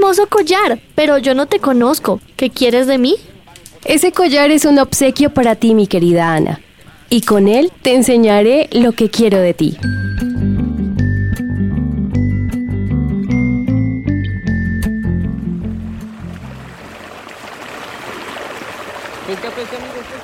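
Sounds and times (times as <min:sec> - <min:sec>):
speech: 0:00.0 - 0:10.3
chiming melodic notes: 0:09.8 - 0:16.2
river flowing: 0:15.6 - 0:20.2.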